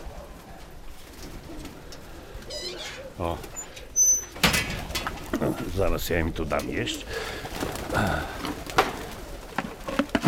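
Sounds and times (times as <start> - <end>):
pigeons cooing in a pigeon loft: 0.0 - 4.1, 6.8 - 10.1
speech: 3.2 - 3.6, 5.4 - 8.6.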